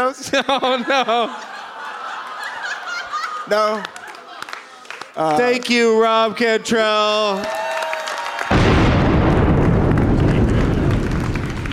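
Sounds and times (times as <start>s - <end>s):
speech: 0.0s - 1.5s, 3.5s - 4.0s, 5.2s - 7.6s
laughter: 0.0s - 7.2s
cannon blast: 8.5s - 11.7s.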